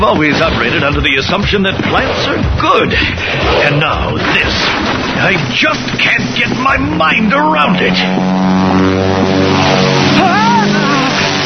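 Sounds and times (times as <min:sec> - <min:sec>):
speech: 0:00.0 - 0:10.4
brief rising and falling tonal sound: 0:04.7 - 0:11.4
propeller airplane droning overhead: 0:04.8 - 0:11.4.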